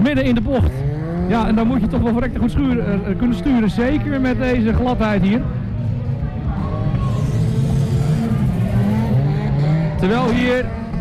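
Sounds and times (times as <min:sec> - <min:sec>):
car engine roaring while driving through slippery wet clay on a muddy bend: 0:00.0 - 0:10.9
speech: 0:00.1 - 0:06.0, 0:10.0 - 0:10.8.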